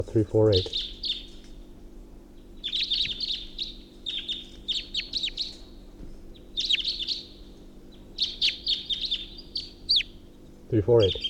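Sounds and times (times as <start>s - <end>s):
speech: 0.0s - 0.9s, 10.7s - 11.2s
steady low hum: 0.0s - 11.2s
bird giving its alternate call: 0.5s - 1.7s, 2.3s - 11.2s
brief low voice: 10.7s - 11.2s.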